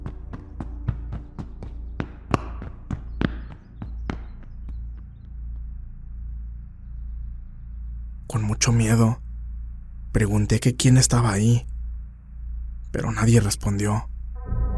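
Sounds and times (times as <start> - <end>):
running footsteps on upper floor: 0.0 - 5.9
low steady hum: 0.0 - 14.7
speech: 8.4 - 9.2, 10.1 - 11.7, 12.9 - 14.1.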